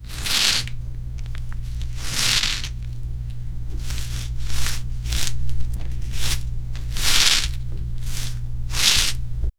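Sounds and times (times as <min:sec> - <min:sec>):
soft rubber slide: 0:00.0 - 0:00.7, 0:01.3 - 0:02.9, 0:03.7 - 0:09.2.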